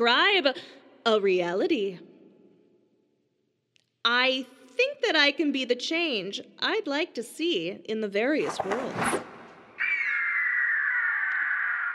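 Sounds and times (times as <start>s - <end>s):
speech: 0.0s - 2.1s, 4.0s - 9.3s
gigantic cockatrice screeching: 9.8s - 11.9s.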